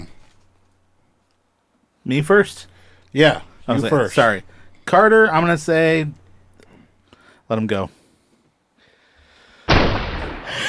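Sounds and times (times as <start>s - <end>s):
speech: 2.1s - 6.2s, 7.5s - 8.0s
gunshot sound effect: 9.7s - 10.6s.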